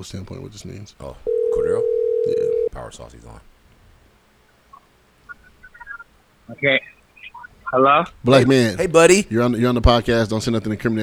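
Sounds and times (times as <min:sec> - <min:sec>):
speech: 0:00.0 - 0:03.6, 0:06.5 - 0:07.0, 0:07.7 - 0:11.0
faint short electronic phone-dialing beeps: 0:01.3 - 0:02.8, 0:04.8 - 0:08.1.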